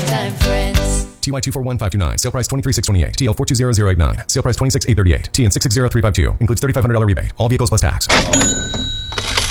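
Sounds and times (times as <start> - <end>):
speech: 0.2 - 8.9
cash register sound effect: 8.1 - 9.4.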